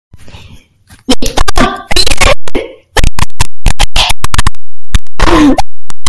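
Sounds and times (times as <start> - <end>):
bass boosted audio: 1.1 - 6.0.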